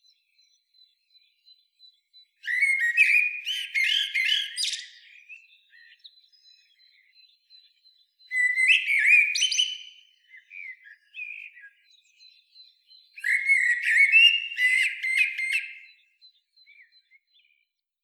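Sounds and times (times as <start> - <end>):
common blackbird Turdus merula singing: 0.0 - 17.7.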